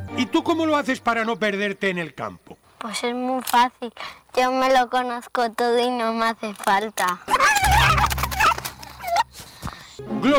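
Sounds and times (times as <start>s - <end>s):
speech: 0.2s - 8.0s, 10.0s - 10.3s
hen calling on a countryside farm: 7.3s - 9.9s.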